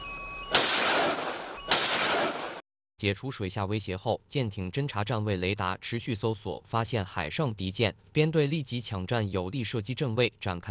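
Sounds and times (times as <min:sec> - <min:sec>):
naval ship firing jamming countermeasures against a torpedo attack: 0:00.6 - 0:02.6
speech: 0:03.0 - 0:10.6.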